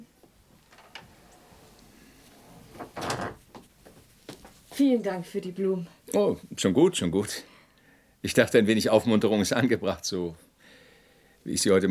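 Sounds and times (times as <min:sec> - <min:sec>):
door creaking: 0:00.6 - 0:04.5
door thudding against its frame: 0:02.7 - 0:03.6
speech: 0:04.8 - 0:07.5, 0:08.2 - 0:10.4, 0:11.4 - 0:11.8.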